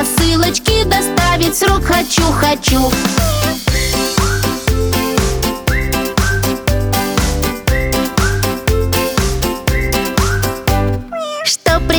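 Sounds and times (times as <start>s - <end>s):
loud bouncy music with a strong beat: 0.0s - 11.1s, 11.7s - 11.9s
speech: 1.6s - 3.6s
cat meowing: 11.1s - 11.7s.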